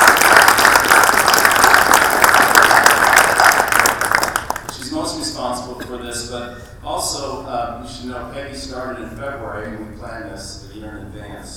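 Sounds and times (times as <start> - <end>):
crowd applauding for an administrative assistant: 0.0 - 4.8
speech: 6.3 - 11.5.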